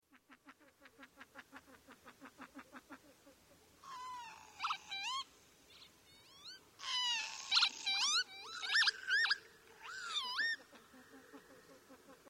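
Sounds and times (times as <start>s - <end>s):
lapwing: 3.8s - 12.2s.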